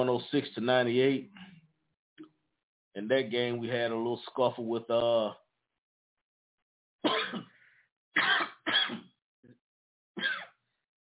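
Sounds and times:
speech: 0:00.0 - 0:01.4, 0:03.0 - 0:05.4
harsh coughing fit after coffee went down the wrong way: 0:07.1 - 0:07.6, 0:08.2 - 0:09.1, 0:10.2 - 0:10.6.

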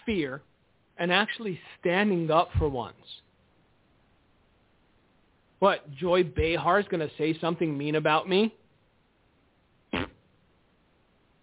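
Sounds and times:
speech: 0:00.1 - 0:03.2, 0:05.6 - 0:08.6
adult blowing a raspberry with the lips: 0:09.9 - 0:10.3.

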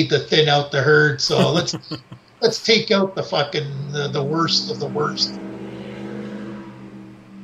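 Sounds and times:
speech: 0:00.0 - 0:05.4
laughter: 0:01.3 - 0:02.6
truck with loud exhaust revving past: 0:03.6 - 0:07.4.

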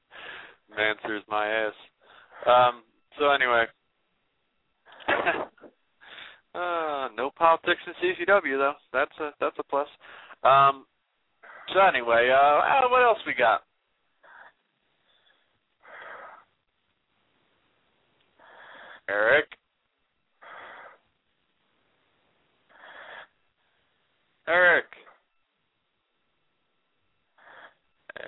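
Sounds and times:
heavy wheezing breathing: 0:00.1 - 0:00.7, 0:06.0 - 0:06.5, 0:10.0 - 0:10.4, 0:14.2 - 0:16.5, 0:18.4 - 0:19.1, 0:20.4 - 0:21.1, 0:22.7 - 0:23.9, 0:27.4 - 0:28.2
speech: 0:00.8 - 0:03.8, 0:06.6 - 0:10.9, 0:11.7 - 0:13.7, 0:19.1 - 0:19.6, 0:24.5 - 0:25.0.

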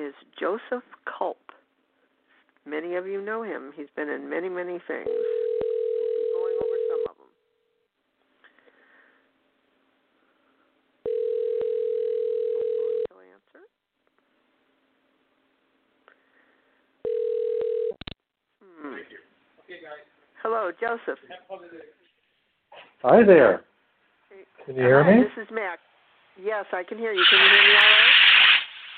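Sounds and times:
speech: 0:00.1 - 0:01.4, 0:02.6 - 0:05.4, 0:20.8 - 0:22.0, 0:23.0 - 0:23.7, 0:24.7 - 0:28.0
telephone ringback tone as a call is placed: 0:05.1 - 0:07.1, 0:11.0 - 0:13.1, 0:17.0 - 0:18.0.

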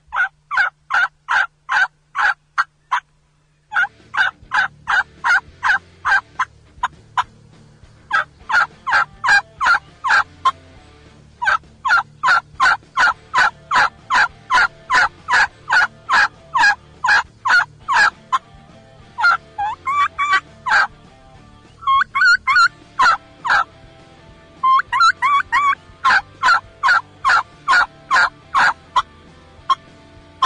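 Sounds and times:
turkey gobbler yelps played on a mouth call: 0:00.1 - 0:03.0, 0:03.7 - 0:06.2, 0:08.1 - 0:10.6, 0:11.4 - 0:18.4, 0:19.2 - 0:20.9, 0:21.8 - 0:23.7, 0:24.6 - 0:29.1.

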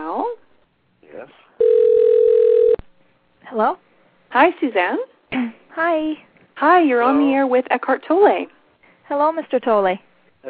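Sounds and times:
telephone dial tone on a line opened for a radio call-in: 0:01.6 - 0:02.8
speech: 0:03.5 - 0:05.1, 0:05.8 - 0:10.4.

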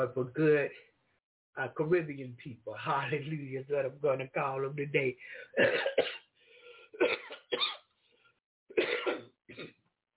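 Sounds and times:
speech: 0:00.0 - 0:00.9, 0:01.6 - 0:06.2, 0:07.0 - 0:07.2
faint wheezy breaths: 0:05.2 - 0:05.6, 0:06.3 - 0:07.0, 0:07.9 - 0:08.4
harsh coughs: 0:05.5 - 0:06.3, 0:07.0 - 0:07.9, 0:08.7 - 0:09.8.

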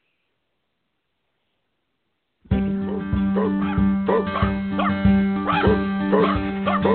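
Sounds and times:
sustained tonal like music: 0:02.5 - 0:06.9
dog barking in loud yaps: 0:02.9 - 0:06.9.

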